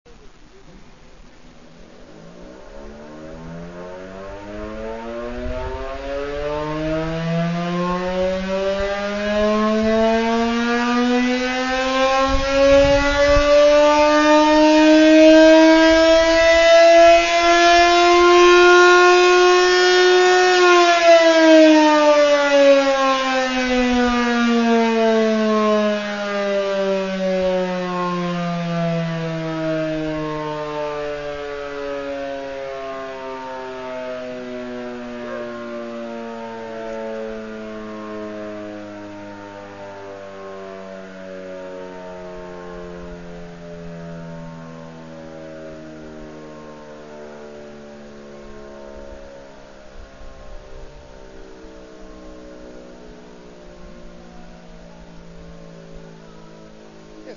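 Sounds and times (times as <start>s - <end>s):
sirens: 0.1s - 57.3s.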